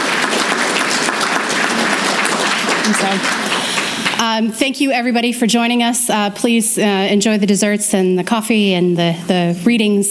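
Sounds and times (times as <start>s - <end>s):
convention crowd applause for a new lifetime member: 0.0s - 4.3s
speech: 2.9s - 3.4s, 4.2s - 10.0s.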